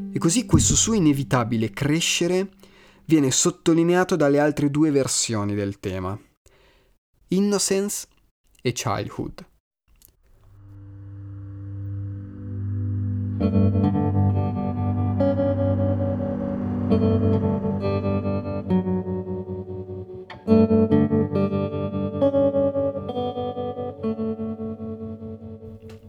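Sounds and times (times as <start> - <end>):
speech: 0.2 - 6.3, 7.3 - 9.5
calm acoustic guitar playing a gentle melodic theme: 10.4 - 26.0.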